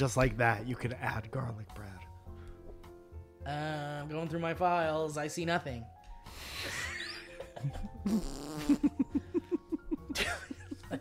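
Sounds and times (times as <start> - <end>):
speech: 0.0 - 2.1, 3.4 - 6.8, 7.6 - 9.3
long sputtering fart sound with buzzy pops: 8.0 - 9.0.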